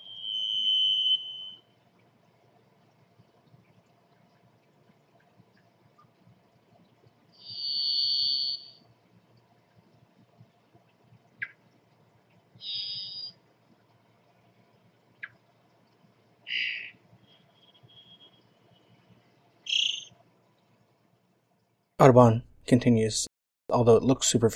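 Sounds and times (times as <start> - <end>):
varied thrush singing long buzzy minor-key whistles: 0.0 - 1.7, 7.4 - 8.8, 12.6 - 13.4, 16.5 - 19.0, 19.6 - 20.2
faint low hum: 0.0 - 24.5
speech: 22.0 - 24.5.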